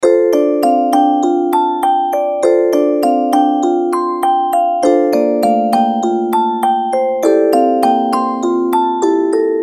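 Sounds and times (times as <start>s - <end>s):
mystery music box melody: 0.0s - 9.6s.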